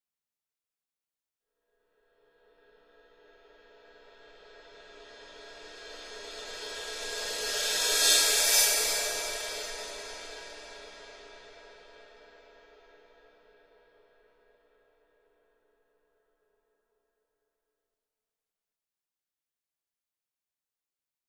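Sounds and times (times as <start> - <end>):
thin cymbal crescendo: 2.6 - 13.2.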